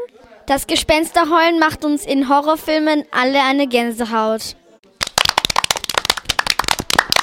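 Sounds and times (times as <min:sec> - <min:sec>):
speech: 0:00.5 - 0:04.6
applause: 0:04.9 - 0:07.2.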